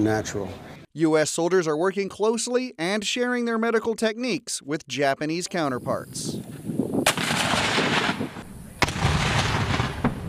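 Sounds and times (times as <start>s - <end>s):
speech: 0.0s - 6.6s
mortar fire during army artillery training: 6.5s - 10.2s
sharp booming mortar reports: 7.0s - 10.2s.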